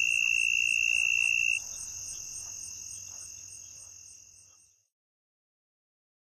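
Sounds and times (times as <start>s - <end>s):
faint high pulsing insect buzz: 0.0s - 4.8s
southern mole cricket trilling in North America: 0.0s - 4.8s.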